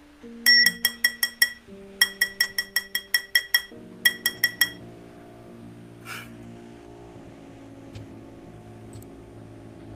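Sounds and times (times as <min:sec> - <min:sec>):
low steady hum: 0:00.0 - 0:09.9
wine glass clinking as a cat knocks it over: 0:00.5 - 0:04.8.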